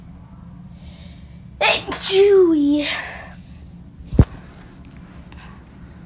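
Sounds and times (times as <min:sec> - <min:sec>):
low hum: 0:00.0 - 0:06.0
quiet breathy inhale: 0:00.7 - 0:01.4
speech: 0:01.7 - 0:03.1.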